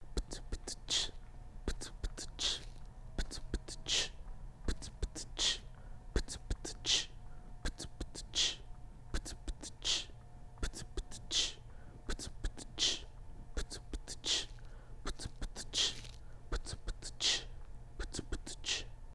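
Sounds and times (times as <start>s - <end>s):
person beatboxing: 0.0s - 19.0s.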